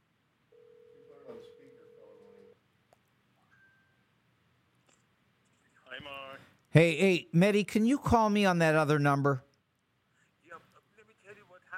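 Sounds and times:
outgoing call's ringing tone through the phone line: 0:00.5 - 0:02.6
faint thin higher beep: 0:03.4 - 0:04.2
speech: 0:06.0 - 0:09.5.

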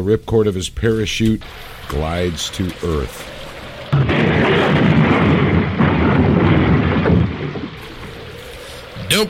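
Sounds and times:
speech: 0:00.0 - 0:03.4
airplane in a spinning nosedive crashing with roaring rumble: 0:03.8 - 0:08.9.

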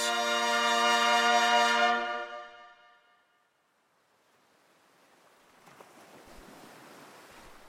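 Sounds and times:
sustained musical chord: 0:00.0 - 0:03.4
waves breaking on the western shore of a sea: 0:04.0 - 0:07.6.

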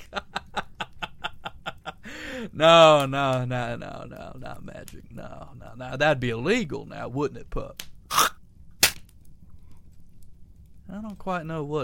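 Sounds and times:
laughter: 0:00.0 - 0:02.1
speech: 0:02.4 - 0:07.9, 0:10.9 - 0:11.8
homemade gunpowder hand cannon firing a slug: 0:08.8 - 0:09.0.

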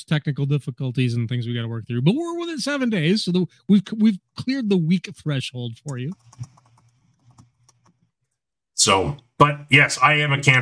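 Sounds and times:
speech: 0:00.0 - 0:06.5, 0:08.8 - 0:10.6
typing a message on a computer keyboard: 0:05.9 - 0:08.0.

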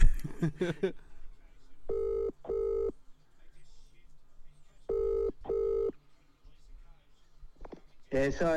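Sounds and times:
laughter: 0:00.0 - 0:01.2
speech: 0:00.4 - 0:01.1, 0:08.2 - 0:08.5
phone ringback tone in double-pulse rings: 0:01.9 - 0:02.9, 0:04.9 - 0:05.9.

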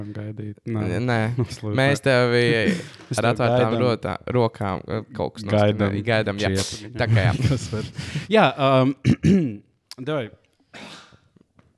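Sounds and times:
speech: 0:00.0 - 0:11.0
laughter: 0:01.4 - 0:04.0, 0:05.5 - 0:08.3
sneeze: 0:10.8 - 0:11.1.

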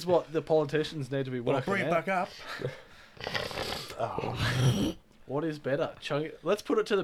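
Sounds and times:
speech: 0:00.0 - 0:07.0
person hawking up phlegm: 0:03.2 - 0:05.0.

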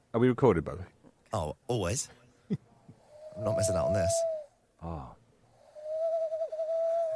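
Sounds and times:
speech: 0:00.1 - 0:02.6, 0:03.4 - 0:05.2
person imitating an owl with a long hooting note: 0:03.1 - 0:07.1.

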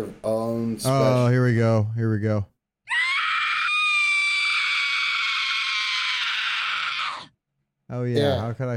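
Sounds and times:
speech: 0:00.0 - 0:02.5, 0:07.9 - 0:08.7
video game raid character's blood-curdling death scream: 0:02.9 - 0:07.3.

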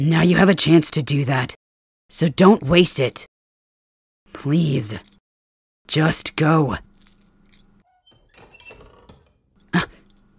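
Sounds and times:
speech: 0:00.0 - 0:03.3, 0:04.3 - 0:05.1, 0:05.9 - 0:06.9
faint creaks: 0:07.1 - 0:10.3
door banging: 0:07.8 - 0:09.6.

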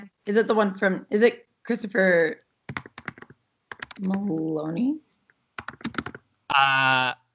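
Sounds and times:
speech: 0:00.2 - 0:02.5, 0:04.0 - 0:05.1, 0:06.5 - 0:07.2
typing on a computer keyboard: 0:02.7 - 0:04.2, 0:05.6 - 0:06.2.

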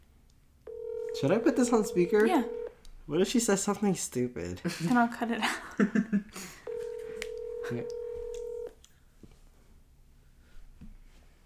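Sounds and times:
outgoing phone call ringing tone: 0:00.7 - 0:02.8, 0:06.7 - 0:08.7
speech: 0:01.2 - 0:06.6, 0:07.7 - 0:08.0.

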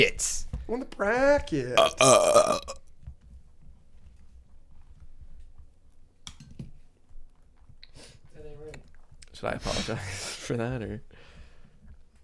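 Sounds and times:
speech: 0:00.0 - 0:02.8, 0:09.4 - 0:11.1
loud burp: 0:01.8 - 0:02.8.

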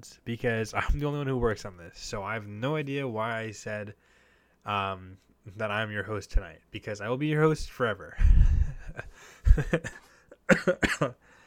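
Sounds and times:
speech: 0:00.0 - 0:11.3
person coughing from allergies: 0:09.5 - 0:11.2.

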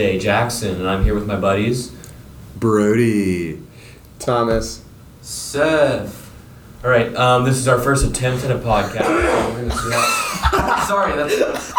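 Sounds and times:
speech: 0:00.0 - 0:02.0, 0:02.6 - 0:06.2, 0:06.8 - 0:11.7
person coughing to clear something from the throat: 0:08.8 - 0:10.0
people chuckling: 0:08.8 - 0:11.7.

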